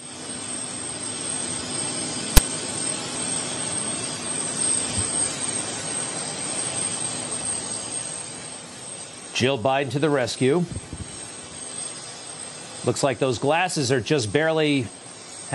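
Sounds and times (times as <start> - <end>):
helicopter engine running: 0.0 - 15.5
sharp click: 2.3 - 2.5
speech: 9.4 - 10.9, 12.8 - 15.5.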